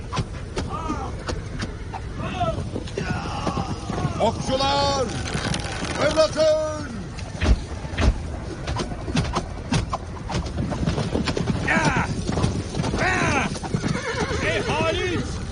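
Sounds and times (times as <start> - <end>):
horses' hooves clattering in a battle: 0.0 - 15.4
spooked horses whinnying and neighing shrilly: 0.8 - 6.0, 8.8 - 15.4
speech: 4.2 - 5.3, 6.0 - 6.8.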